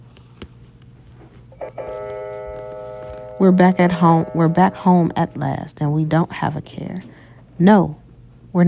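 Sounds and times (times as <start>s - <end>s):
low hum: 0.0s - 8.6s
clock chime with a bright sustained tone: 1.6s - 6.3s
speech: 1.7s - 2.1s, 3.4s - 8.6s.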